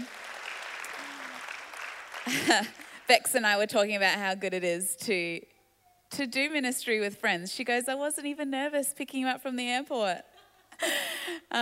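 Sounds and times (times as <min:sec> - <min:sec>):
crowd applauding: 0:00.0 - 0:03.1
speech: 0:02.3 - 0:05.5, 0:06.1 - 0:11.6.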